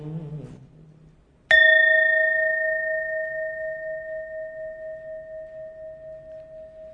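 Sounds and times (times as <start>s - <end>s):
bell struck during a Buddhist chant: 1.5s - 6.9s.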